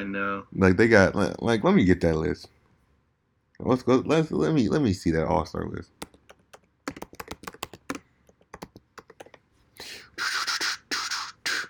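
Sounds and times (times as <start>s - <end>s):
speech: 0.0s - 2.6s, 3.6s - 6.0s
typing on a computer keyboard: 6.0s - 9.4s.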